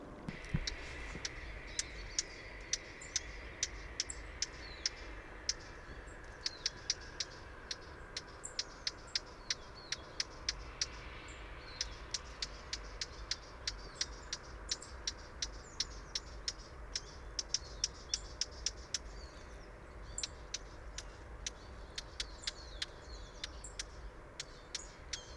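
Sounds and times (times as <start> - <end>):
warbler calling: 0.3 - 25.3.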